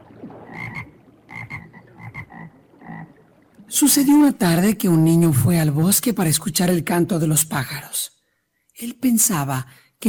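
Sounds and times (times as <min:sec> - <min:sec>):
frogs croaking: 0:00.4 - 0:03.4
speech: 0:03.7 - 0:08.2, 0:08.8 - 0:10.0.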